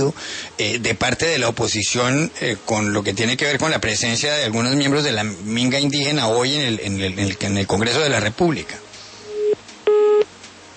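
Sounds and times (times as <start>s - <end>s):
speech: 0.0s - 8.8s
faint telephone line hiss: 0.0s - 10.7s
telephone busy tone after a dropped phone call: 9.3s - 10.3s.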